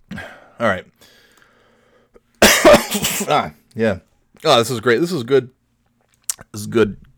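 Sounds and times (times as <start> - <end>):
speech: 0.6 - 1.2, 2.9 - 5.6, 6.4 - 7.0
harsh raspy coughing fit: 2.4 - 3.5.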